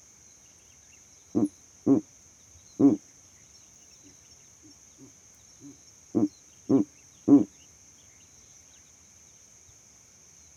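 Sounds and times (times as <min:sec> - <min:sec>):
owl giving short deep raspy hoots at night: 0:01.4 - 0:02.0, 0:02.8 - 0:03.0, 0:05.0 - 0:07.5.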